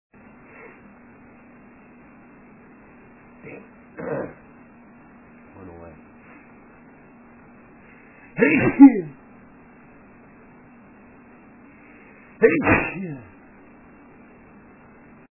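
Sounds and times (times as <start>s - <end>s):
man sneezing: 8.4s - 9.2s, 12.4s - 13.3s.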